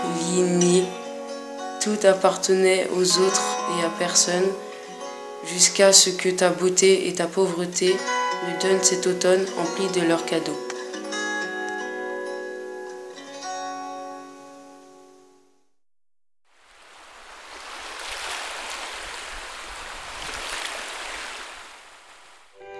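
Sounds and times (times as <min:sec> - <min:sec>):
short melodic passage of sustained tones: 0:00.0 - 0:15.6
speech: 0:00.3 - 0:01.0, 0:01.8 - 0:04.7, 0:05.4 - 0:10.6
water lapping and splashing: 0:16.6 - 0:22.6.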